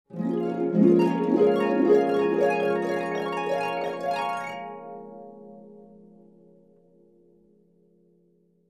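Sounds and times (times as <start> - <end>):
harp dreaming sound effect: 0.1 - 6.7.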